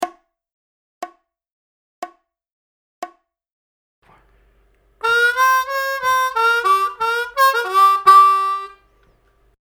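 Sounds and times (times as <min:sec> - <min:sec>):
intermediate harmonica licks in G: 0:04.1 - 0:09.4.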